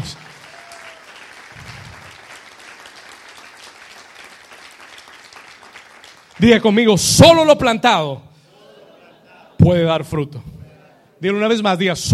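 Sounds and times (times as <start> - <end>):
church audience applauding during a sermon: 0.0 - 6.7
speech: 6.4 - 8.3, 9.6 - 10.5, 11.2 - 12.1.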